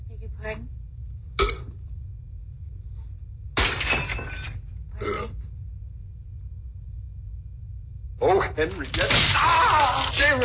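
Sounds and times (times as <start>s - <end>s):
glass breaking: 3.6s - 4.6s, 8.7s - 10.4s
speech: 8.4s - 10.4s.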